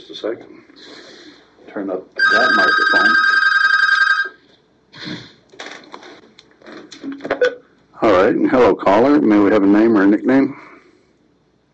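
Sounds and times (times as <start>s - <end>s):
speech: 0.2s - 1.1s, 1.7s - 3.4s, 8.0s - 10.6s
telephone bell ringing for an incoming call: 2.2s - 4.4s.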